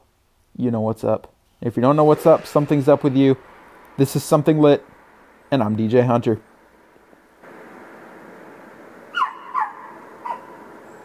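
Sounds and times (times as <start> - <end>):
steady low hiss: 0.0 - 11.0
speech: 0.6 - 4.9, 5.5 - 6.5
dog whimpering yelps: 9.1 - 11.0.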